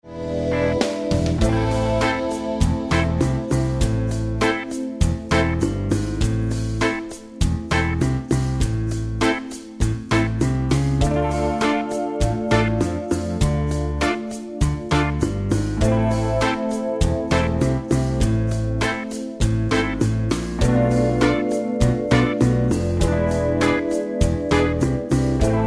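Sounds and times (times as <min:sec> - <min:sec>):
Latin groove improvisation with a harmonic minor scale: 0:00.3 - 0:25.6.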